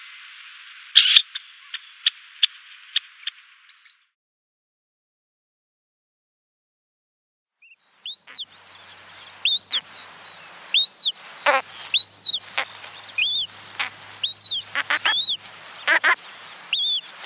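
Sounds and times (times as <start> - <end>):
female ruff calls of clear arched whistled notes: 0.9 - 4.0, 7.6 - 17.2.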